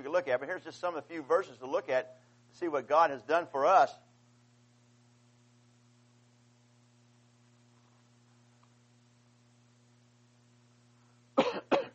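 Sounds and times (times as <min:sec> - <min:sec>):
faint steady hum: 0:00.0 - 0:11.9
speech: 0:00.1 - 0:04.0
rough throat clearing: 0:11.4 - 0:11.9.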